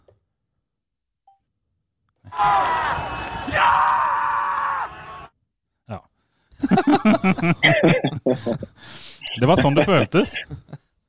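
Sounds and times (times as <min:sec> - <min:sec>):
speech: 0:02.3 - 0:02.8, 0:07.0 - 0:10.7
crowd cheering and yelling: 0:02.3 - 0:05.3
laughter: 0:06.6 - 0:10.9.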